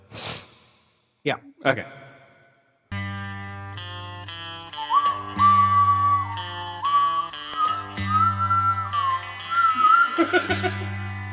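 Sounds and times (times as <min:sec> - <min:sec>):
speech: 0:01.2 - 0:02.0, 0:10.3 - 0:11.0
death whistle: 0:04.8 - 0:10.3
laughter: 0:09.8 - 0:10.9.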